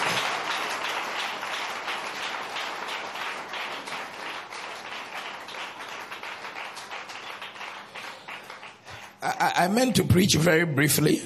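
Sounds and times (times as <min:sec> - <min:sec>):
church audience clapping hands: 0:00.0 - 0:09.9
speech: 0:09.3 - 0:11.2.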